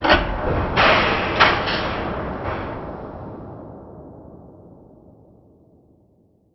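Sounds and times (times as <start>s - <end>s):
industrial ambience: 0.0s - 4.3s.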